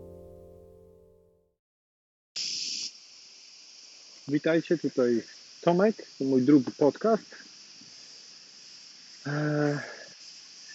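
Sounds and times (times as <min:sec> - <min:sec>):
crickets chirping on a shore: 0:02.4 - 0:10.7
speech: 0:04.3 - 0:07.5, 0:09.2 - 0:10.0.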